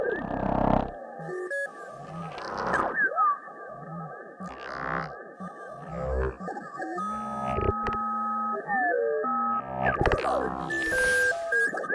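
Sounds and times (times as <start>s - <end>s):
roboport working: 0.1s - 3.0s, 4.4s - 8.5s, 9.6s - 11.8s.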